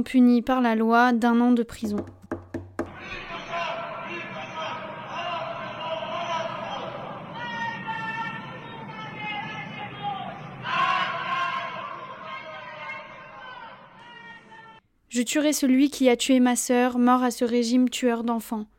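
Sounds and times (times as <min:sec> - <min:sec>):
speech: 0:00.0 - 0:02.2, 0:15.2 - 0:18.7
sharp knocks: 0:01.9 - 0:03.0
protest crowd shouting slogans in street: 0:02.9 - 0:14.8.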